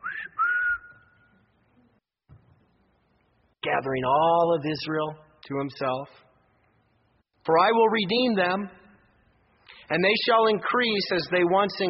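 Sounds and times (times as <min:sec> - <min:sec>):
person whistling two clear notes: 0:00.0 - 0:01.4
speech: 0:03.7 - 0:06.2, 0:07.4 - 0:08.8, 0:09.9 - 0:11.8.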